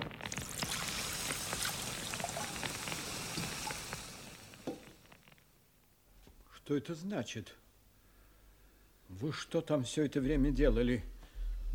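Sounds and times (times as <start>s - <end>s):
water from a bucket pouring onto straw: 0.0s - 5.2s
speech: 6.7s - 7.6s, 9.1s - 11.7s.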